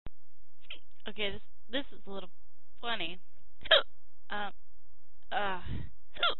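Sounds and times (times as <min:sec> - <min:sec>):
speech: 0:01.0 - 0:04.6, 0:05.3 - 0:06.3
sharp voiced hiccups: 0:03.6 - 0:03.9, 0:06.2 - 0:06.3.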